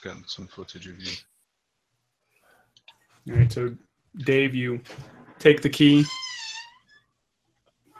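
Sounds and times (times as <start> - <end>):
speech: 0.0 - 1.3, 3.2 - 6.3
door creaking open: 4.8 - 7.1.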